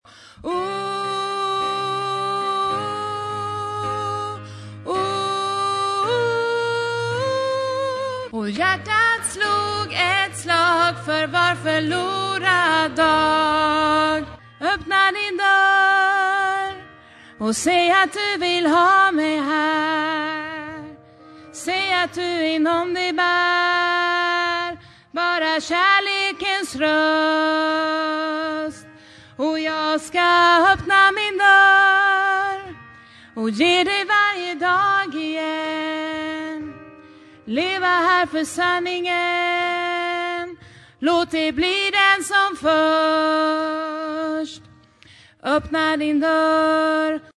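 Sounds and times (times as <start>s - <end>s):
soprano voice singing: 0.4s - 32.8s, 33.4s - 36.8s, 37.5s - 44.7s, 45.4s - 47.3s.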